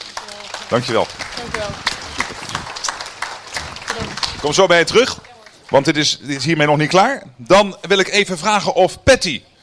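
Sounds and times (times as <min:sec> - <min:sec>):
audience applauding with many hands clapping: 0:00.0 - 0:07.0
speech: 0:00.7 - 0:02.0, 0:04.0 - 0:09.5.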